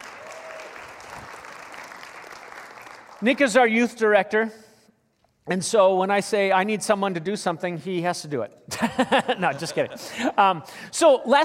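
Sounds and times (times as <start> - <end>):
church audience applause: 0.0 - 3.3
speech: 3.2 - 4.6, 5.5 - 11.4
laughter: 8.7 - 10.6.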